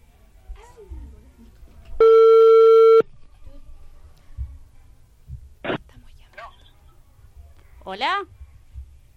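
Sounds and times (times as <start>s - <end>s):
telephone ringing tone as an outgoing call is placed: 2.0s - 3.0s
speech: 7.9s - 8.3s.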